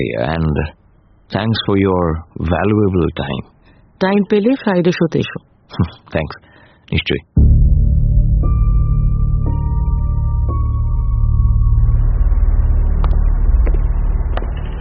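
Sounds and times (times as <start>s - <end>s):
speech: 0.0s - 7.3s
car engine rumbling as car pulls away in a parking lot: 7.5s - 14.7s.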